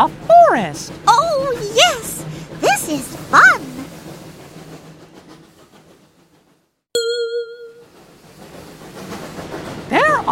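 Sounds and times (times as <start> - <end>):
speech: 0.0 - 2.0
train rumbling along the rails with rhythmic clatter: 0.0 - 10.3
bright ringing chime: 7.0 - 7.8.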